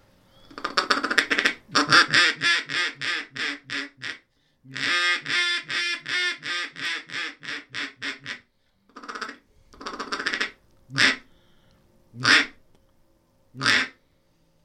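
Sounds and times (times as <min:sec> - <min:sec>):
mahogany duck call with cedar throat and metal reed blown in raspy quacks: 0:00.5 - 0:11.3, 0:12.2 - 0:12.6, 0:13.6 - 0:14.0.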